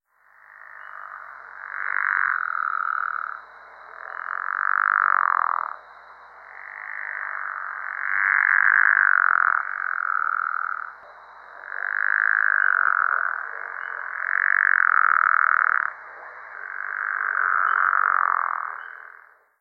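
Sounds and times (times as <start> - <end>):
Pickerel Frog call: 0.1 - 19.5.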